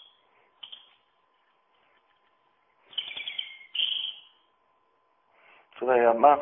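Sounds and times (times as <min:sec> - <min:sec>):
European robin singing: 0:00.0 - 0:01.0, 0:02.9 - 0:04.5
faint steady hum: 0:00.0 - 0:06.4
speech: 0:05.8 - 0:06.4.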